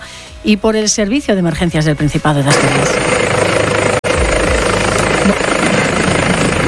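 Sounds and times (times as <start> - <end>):
speech: 0.4 - 3.3, 5.3 - 5.5
helicopter flying overhead: 2.4 - 6.6.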